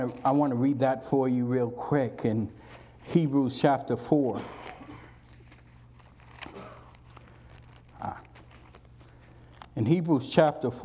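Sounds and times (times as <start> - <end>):
pages of Bibles rustling: 0.0 - 0.8, 2.6 - 10.8
speech: 0.0 - 4.7, 9.8 - 10.8
low steady hum: 0.0 - 10.8.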